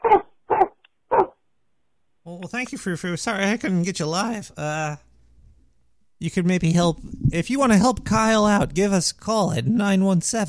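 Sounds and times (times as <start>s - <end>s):
person imitating a dog barking: 0.0s - 1.3s
speech: 2.4s - 5.1s, 6.2s - 10.4s.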